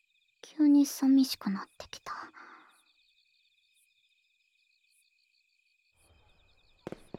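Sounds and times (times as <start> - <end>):
crickets chirping at night: 0.0 - 7.1
speech: 0.6 - 2.2
distant fireworks bursting: 6.8 - 7.1.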